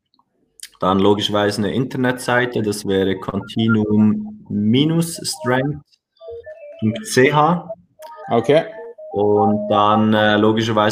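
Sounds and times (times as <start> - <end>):
speech: 0.8 - 5.9, 6.8 - 10.9
mobile phone short electronic ringtone melody: 2.5 - 10.3.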